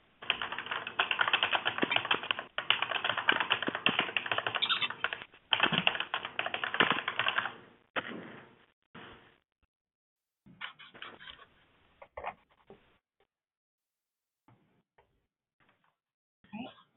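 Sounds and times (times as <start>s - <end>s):
several people typing on computer keyboards: 0.2s - 7.6s.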